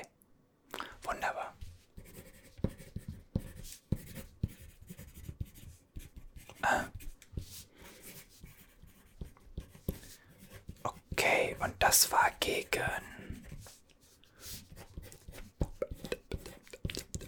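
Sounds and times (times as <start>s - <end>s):
pen scratching across paper taking notes: 2.0s - 17.2s
speech: 11.9s - 13.1s.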